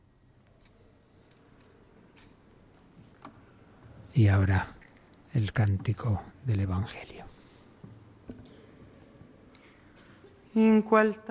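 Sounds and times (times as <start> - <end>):
low hum: 0.0 - 11.2
swinging censer clinking while incensing the Gospel book: 0.4 - 6.0
speech: 4.2 - 7.3, 10.6 - 11.2.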